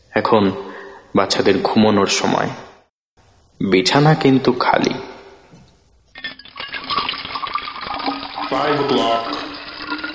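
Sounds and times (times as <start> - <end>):
speech: 0.2 - 2.7, 3.6 - 5.1, 8.5 - 9.5
clean hot water gushing into a bathtub as it fills: 6.6 - 10.1.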